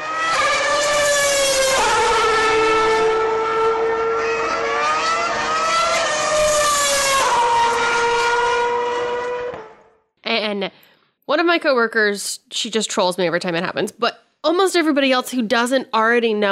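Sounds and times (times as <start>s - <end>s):
Formula One cars going by with high-pitched engine whine: 0.0s - 9.9s
speech: 11.6s - 16.5s.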